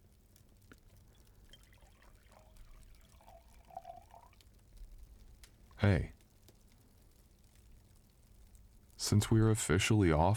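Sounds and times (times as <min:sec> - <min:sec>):
wine pouring into a glass: 0:00.8 - 0:04.5
speech: 0:05.8 - 0:06.2, 0:09.1 - 0:10.3.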